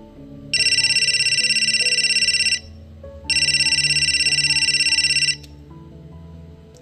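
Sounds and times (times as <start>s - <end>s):
soft low music: 0.0s - 6.8s
mobile phone ringing: 0.5s - 5.5s.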